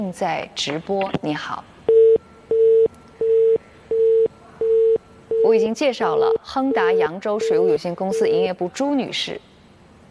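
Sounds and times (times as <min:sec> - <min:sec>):
speech: 0:00.0 - 0:01.8, 0:05.5 - 0:09.5
telephone busy tone after a caller hangs up: 0:01.9 - 0:05.6, 0:06.2 - 0:08.5.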